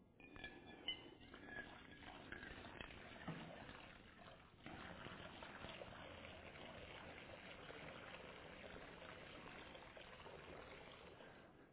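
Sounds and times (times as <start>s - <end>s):
faint clinks of a vessel: 0.2s - 3.3s
water pouring: 0.2s - 11.7s.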